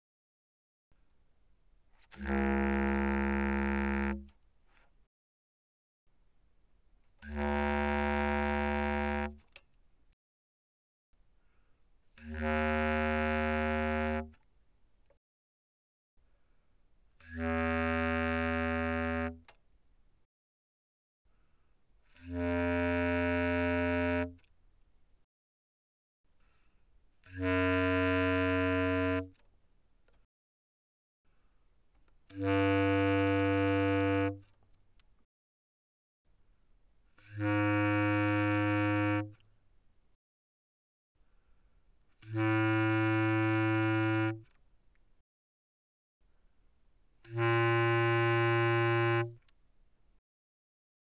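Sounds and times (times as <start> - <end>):
bass clarinet notes played mezzo forte: 2.2 - 4.3, 7.2 - 9.4, 12.3 - 14.4, 17.3 - 19.5, 22.2 - 24.4, 27.3 - 29.3, 32.3 - 34.4, 37.2 - 39.4, 42.2 - 44.4, 47.3 - 49.4.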